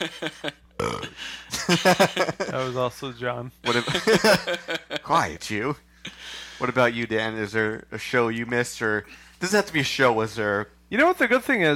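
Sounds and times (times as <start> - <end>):
laughter: 0.0 - 0.6, 1.5 - 2.8, 3.6 - 5.1
speech: 0.0 - 0.6, 1.7 - 5.9, 6.6 - 11.7
loud raspy burp: 0.8 - 1.2.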